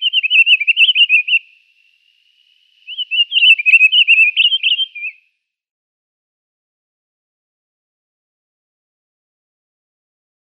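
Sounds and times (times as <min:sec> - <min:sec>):
Pine Grosbeak whistled warbling song: 0:00.0 - 0:05.3.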